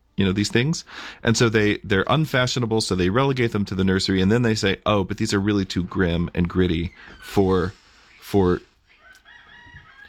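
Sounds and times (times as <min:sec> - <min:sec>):
speech: 0:00.2 - 0:08.7
rooster crowing outside: 0:08.9 - 0:10.0.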